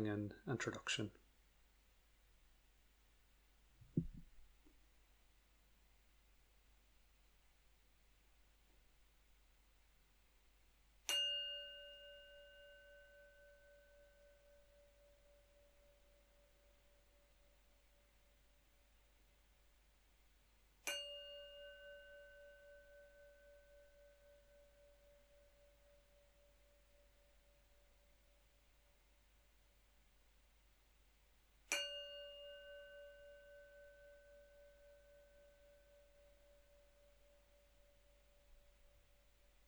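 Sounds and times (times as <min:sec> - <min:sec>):
speech: 0:00.0 - 0:01.2
meditation bell struck at the start of a meditation: 0:11.1 - 0:17.6, 0:20.9 - 0:27.8, 0:31.7 - 0:39.2.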